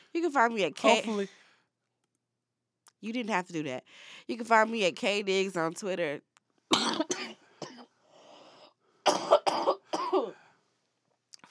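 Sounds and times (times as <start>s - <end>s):
speech: 0.1s - 1.4s, 3.0s - 7.1s
person coughing harshly: 0.8s - 1.3s, 6.7s - 7.9s, 9.1s - 10.4s
raspy breath: 3.9s - 4.3s, 7.4s - 9.0s.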